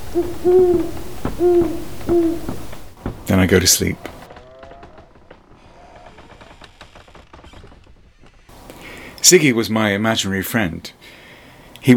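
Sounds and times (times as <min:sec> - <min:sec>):
owl hooting at night at the end of a garden: 0:00.0 - 0:03.0
speech: 0:00.1 - 0:02.6, 0:03.3 - 0:04.2, 0:09.3 - 0:11.2.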